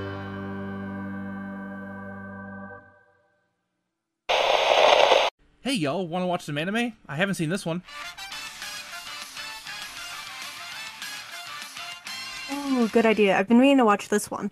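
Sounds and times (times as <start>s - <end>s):
TV static hiss: 4.3s - 5.3s
speech: 5.7s - 8.2s, 12.8s - 14.5s.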